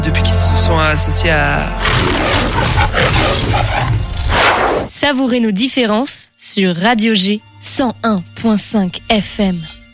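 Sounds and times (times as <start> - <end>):
speech: 0.1 - 9.8
loud sustained lion roar: 1.8 - 4.9.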